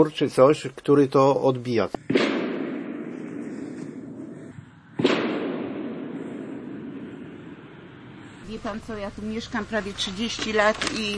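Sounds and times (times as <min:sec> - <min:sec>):
speech: 0:00.0 - 0:02.2, 0:08.6 - 0:11.1
gunshot from a nearby shooting range: 0:02.1 - 0:08.4
low rumble: 0:03.5 - 0:11.1.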